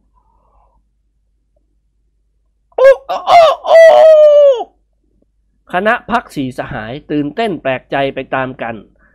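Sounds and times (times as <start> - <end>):
duck crowing like a rooster: 2.8 - 4.8
speech: 5.7 - 8.9.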